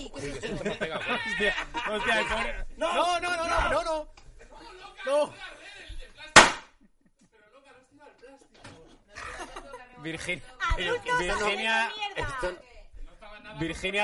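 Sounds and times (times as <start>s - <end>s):
people laughing: 0.0s - 3.6s, 4.2s - 5.9s, 6.8s - 7.5s, 9.0s - 10.0s
speech: 0.0s - 4.2s, 5.0s - 5.6s, 10.0s - 12.7s, 13.5s - 14.0s
firecracker exploding against plastic: 6.4s - 6.7s.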